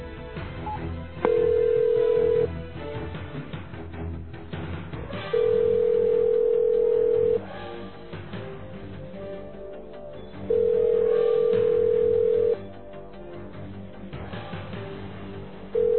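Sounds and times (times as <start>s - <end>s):
phone ringback tone: 0.7s - 2.5s, 5.4s - 7.4s, 10.5s - 12.6s, 15.8s - 15.9s.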